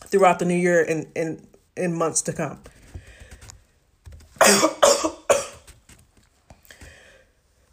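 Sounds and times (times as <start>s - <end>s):
speech: 0.1s - 2.7s
breaths: 2.7s - 3.7s, 6.5s - 7.7s
harsh coughs: 4.4s - 5.7s.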